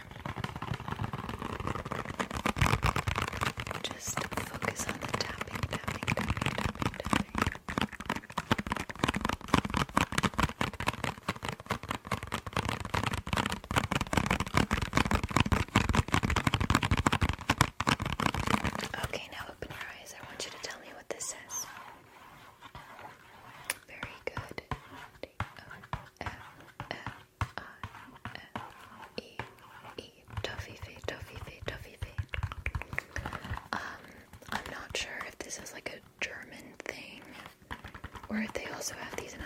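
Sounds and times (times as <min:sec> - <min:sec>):
keyboard typing: 0:00.0 - 0:21.8, 0:25.4 - 0:39.4
speech: 0:38.4 - 0:39.4.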